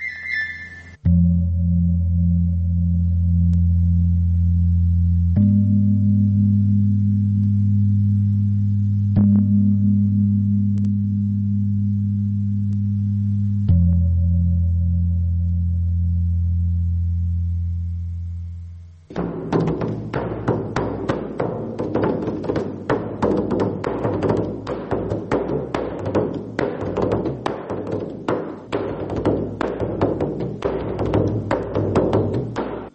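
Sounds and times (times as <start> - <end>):
Indonesian gongs struck in a hall of a musical instrument collection: 0.8 - 32.9
Chinese drum struck: 19.1 - 32.9.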